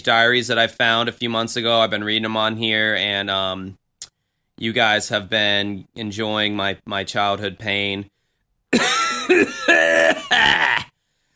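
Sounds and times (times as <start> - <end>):
speech: 0.0 - 3.8, 4.6 - 10.9
harsh raspy throaty coughs: 8.7 - 10.9.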